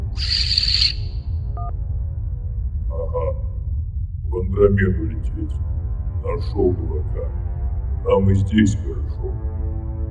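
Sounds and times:
harsh burst of hissing static with a thin whistling tone: 0.0s - 1.2s
low steady hum: 0.9s - 10.0s
speech: 4.6s - 10.0s.

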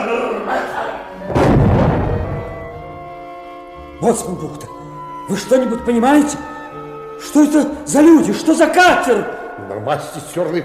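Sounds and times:
cannon shot fired across a boat's bow: 1.3s - 3.0s
speech: 4.0s - 6.5s, 7.2s - 10.6s.

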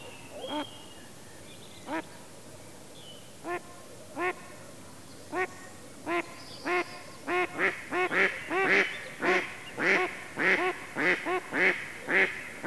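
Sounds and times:
Mallard giving loud rasping quacks: 6.1s - 12.6s.

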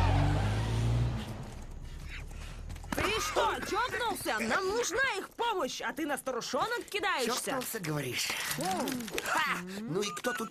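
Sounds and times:
car driving off with a low engine drone: 0.0s - 2.8s
speech: 3.2s - 10.4s.

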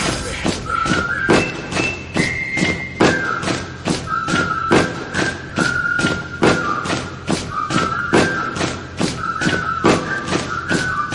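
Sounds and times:
feet stomping on the floor: 0.0s - 11.1s
high whistling tone: 0.5s - 11.1s.

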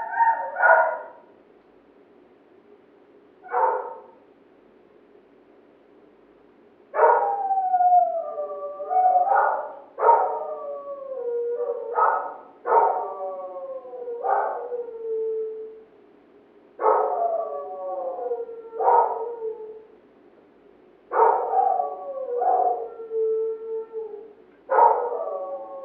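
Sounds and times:
neighbours' dog barking and howling: 0.0s - 1.3s, 3.4s - 4.2s, 7.0s - 15.8s, 16.8s - 19.9s, 21.1s - 25.8s.

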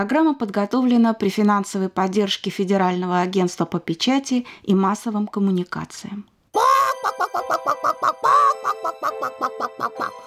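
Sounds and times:
speech: 0.0s - 10.2s
chicken clucking: 6.9s - 10.2s.

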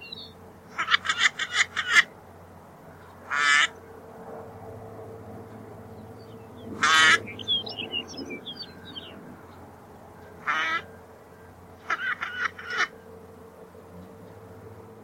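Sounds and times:
low background hum: 0.0s - 15.0s
northern pintail Anas acuta hoarse calls: 0.7s - 2.1s, 3.2s - 3.8s, 6.8s - 7.9s, 10.4s - 13.1s.

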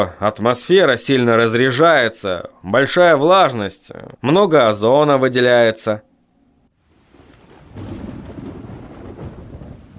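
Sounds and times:
speech: 0.0s - 6.1s
steady rain hissing: 6.8s - 9.9s
heavy thunderclap rumbling: 6.9s - 9.9s.

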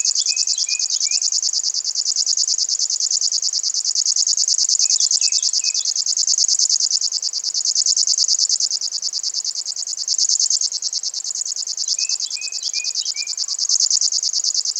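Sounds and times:
River warbler singing a rhythmic buzzing song: 0.0s - 1.3s, 4.8s - 6.0s, 11.8s - 14.2s.

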